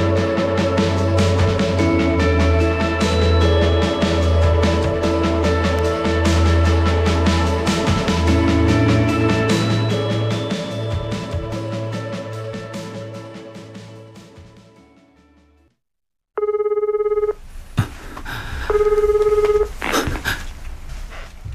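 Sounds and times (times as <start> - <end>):
music: 0.0 - 15.8
telephone ringing: 16.4 - 17.4, 18.7 - 19.8.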